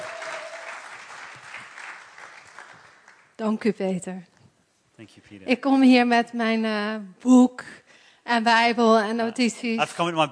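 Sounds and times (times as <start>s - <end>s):
church congregation applauding: 0.0s - 3.3s
speech: 3.4s - 4.3s, 5.0s - 10.3s.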